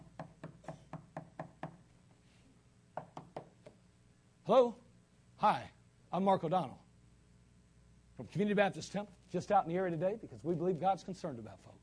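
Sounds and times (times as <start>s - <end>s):
knocking on a door: 0.0s - 1.8s, 3.0s - 3.8s
speech: 4.5s - 4.8s, 5.4s - 6.8s, 8.2s - 11.8s.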